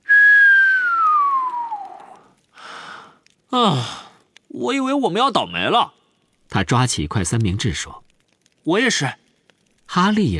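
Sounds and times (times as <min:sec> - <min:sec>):
long soft human whistle gliding downward: 0:00.0 - 0:02.2
speech: 0:03.5 - 0:04.0, 0:04.6 - 0:08.0, 0:08.6 - 0:09.2, 0:09.9 - 0:10.3.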